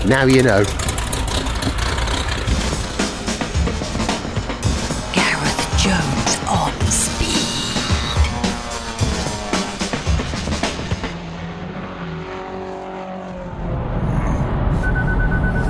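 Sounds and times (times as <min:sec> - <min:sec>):
low engine rumble: 0:00.0 - 0:15.6
speech: 0:00.1 - 0:00.8
modern car's electronic beep: 0:14.7 - 0:15.6.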